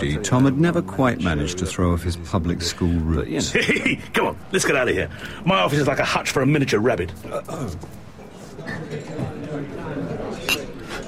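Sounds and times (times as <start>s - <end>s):
speech: 0.0s - 8.0s
chatter: 0.0s - 11.0s
glasses clinking in a toast: 10.4s - 10.8s.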